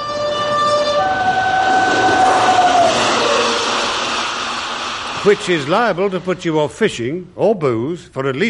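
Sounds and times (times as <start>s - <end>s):
train horn blaring a sustained two-tone blast: 0.0s - 3.1s
train rumbling and clattering over a bridge: 0.2s - 7.3s
speech: 5.2s - 8.4s.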